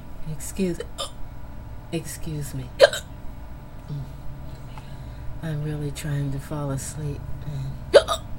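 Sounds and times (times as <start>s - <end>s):
speech: 0.4s - 1.1s, 1.9s - 3.0s, 3.9s - 4.2s, 5.4s - 8.2s
hiccups: 7.9s - 8.3s.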